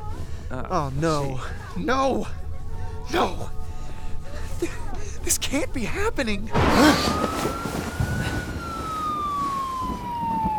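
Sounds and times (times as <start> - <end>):
speech: 0.5 - 2.4, 3.1 - 3.6, 4.6 - 7.9
distant siren wailing: 6.8 - 10.5.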